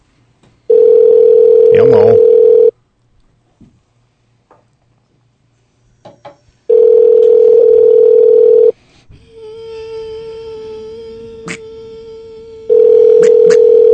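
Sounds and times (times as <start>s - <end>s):
loud steady telephone dial tone: 0.7s - 2.7s, 6.7s - 8.8s, 12.7s - 13.9s
speech: 1.8s - 2.3s.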